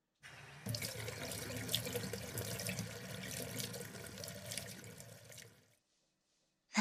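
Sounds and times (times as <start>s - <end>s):
bath water running from a tap into a tub: 0.3s - 5.7s.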